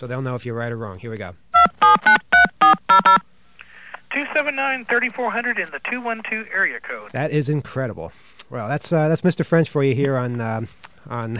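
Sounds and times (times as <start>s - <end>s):
speech: 0.0s - 1.4s, 3.0s - 3.3s, 4.4s - 11.3s
touch-tone beeps of a phone number being dialed: 1.6s - 3.2s.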